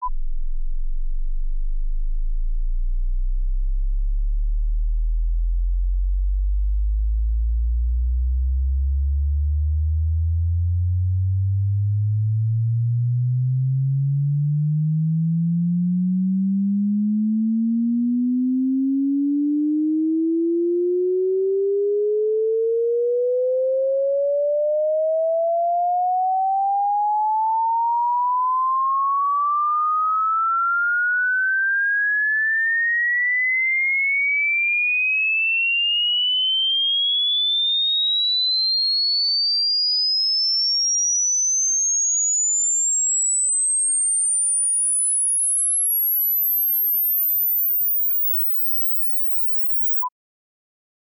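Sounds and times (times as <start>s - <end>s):
20Hz to 20kHz frequency sweep tone: 0.0s - 50.1s.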